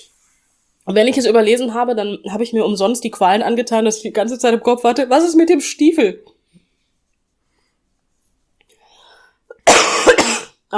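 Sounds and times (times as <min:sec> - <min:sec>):
speech: 0:00.9 - 0:06.4
person coughing: 0:09.5 - 0:10.6.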